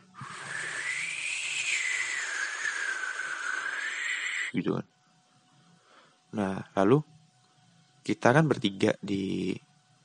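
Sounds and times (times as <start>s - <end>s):
voice imitating a howling storm wind: 0.2s - 4.6s
speech: 4.6s - 4.9s, 6.3s - 7.1s, 8.0s - 9.6s.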